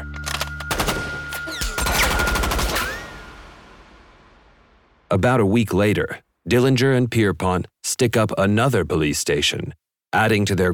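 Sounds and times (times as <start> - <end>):
Tommy gun firing rapid bursts of .45 caliber rounds: 0.7 - 3.2
speech: 5.1 - 10.7.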